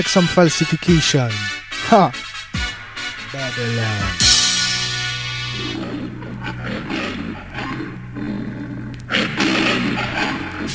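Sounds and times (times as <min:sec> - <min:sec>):
speech: 0:00.0 - 0:02.3, 0:03.3 - 0:04.2
steady low drone: 0:03.4 - 0:10.7
lion roaring: 0:05.4 - 0:10.7.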